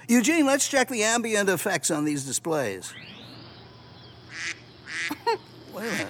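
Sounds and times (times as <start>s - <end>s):
speech: 0.1s - 3.2s, 5.1s - 6.0s
duck quacking: 4.3s - 5.2s, 5.8s - 6.0s.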